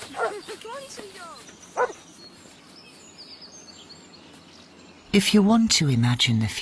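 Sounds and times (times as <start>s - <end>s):
dog barking: 0.2s - 0.4s, 1.8s - 2.0s
speech: 0.2s - 2.0s, 5.2s - 6.6s.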